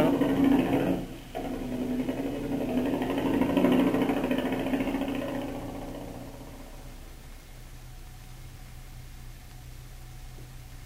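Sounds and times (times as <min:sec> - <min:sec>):
motor running: 0:00.0 - 0:08.6.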